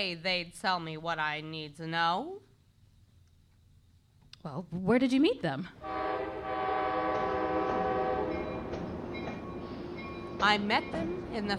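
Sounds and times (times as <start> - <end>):
speech: 0.0 - 2.5, 4.4 - 7.0, 10.4 - 11.5
train horn blasting at a railroad station on the Long Island Railroad: 5.8 - 8.7
low rumble of rail noise: 5.8 - 11.5.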